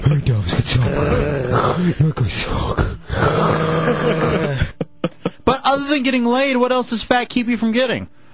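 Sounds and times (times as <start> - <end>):
speech: 0.4 - 3.0, 5.9 - 8.2
man groaning and grunting in his sleep: 0.4 - 4.8
heavy labored sleep-apnea breathing of a man asleep on a porch: 0.7 - 5.4.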